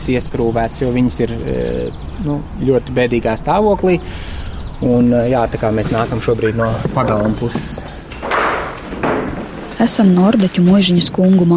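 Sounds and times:
speech: 0.0s - 7.9s, 9.8s - 11.5s
heavy courtyard door of a manor house opening and shutting: 8.0s - 10.3s.

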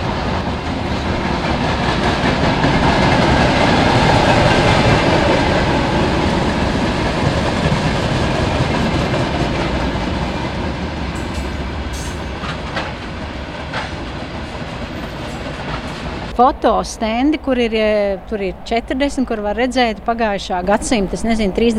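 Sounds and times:
rhythmic clatter of train wheels: 0.0s - 21.7s
train rumbling past on rails: 0.0s - 21.7s
speech: 16.4s - 21.7s.

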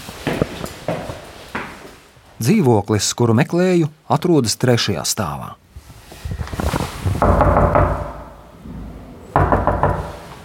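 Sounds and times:
speech: 2.4s - 5.6s
knocking on an apartment door: 7.2s - 8.3s, 9.4s - 10.2s.

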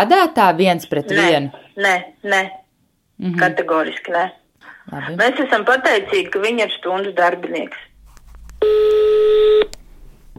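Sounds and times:
speech: 0.0s - 2.6s, 3.2s - 7.9s
steady telephone dialing tone: 8.6s - 9.8s.

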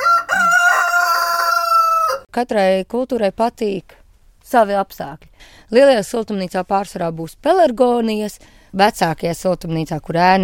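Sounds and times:
rooster crowing near a chicken enclosure on a farm in Latvia: 0.0s - 2.3s
speech: 2.4s - 10.4s.

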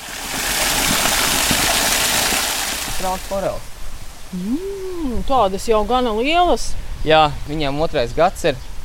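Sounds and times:
spring water pouring and trickling into a pond: 0.0s - 3.5s
speech: 3.0s - 3.7s, 4.3s - 8.7s.

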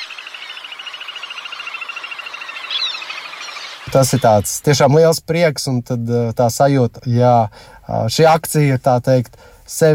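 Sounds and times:
little grebe singing a rapid whinnying trill: 0.0s - 4.7s
speech: 3.9s - 9.9s.

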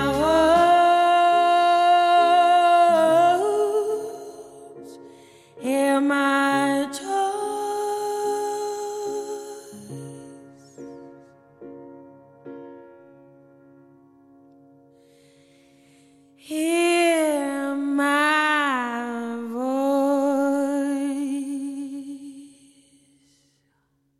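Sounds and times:
pop song with female singer on morning radio: 0.0s - 10.3s, 16.4s - 22.8s.

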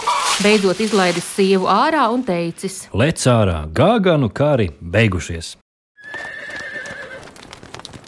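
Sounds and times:
speech: 0.4s - 5.6s
horse hitched to a cart whinnying: 6.0s - 7.3s
horse hooves clip-clopping: 6.0s - 8.0s.

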